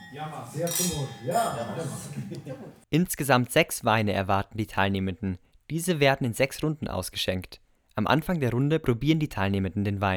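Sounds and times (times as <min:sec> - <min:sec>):
group of people chattering and murmuring: 0:00.0 - 0:02.8
wine glasses clinking in a toast at a biblical wine tasting in a parish hall: 0:00.0 - 0:02.8
speech: 0:00.1 - 0:10.1.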